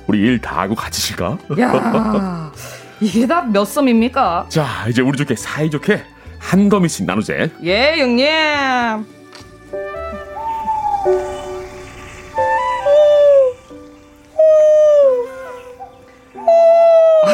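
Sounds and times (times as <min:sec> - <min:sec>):
speech: 0:00.1 - 0:09.2
laughter: 0:01.5 - 0:02.5, 0:17.1 - 0:17.3
owl hooting: 0:10.0 - 0:17.3.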